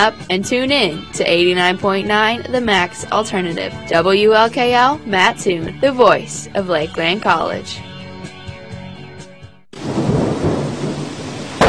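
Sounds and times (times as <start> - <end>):
speech: 0.0 - 7.9
music: 0.0 - 9.7
deep rolling thunder: 9.8 - 11.6
heavy rain: 9.8 - 11.6.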